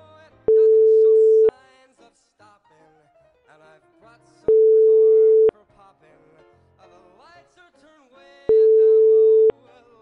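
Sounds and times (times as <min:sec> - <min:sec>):
phone line ringback tone beep: 0:00.5 - 0:01.5, 0:04.5 - 0:05.5, 0:08.5 - 0:09.5.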